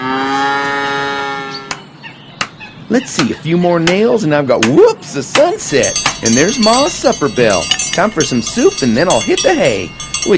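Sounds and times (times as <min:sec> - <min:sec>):
cow mooing by the barn on a farm: 0:00.0 - 0:01.7
speech: 0:02.9 - 0:10.3.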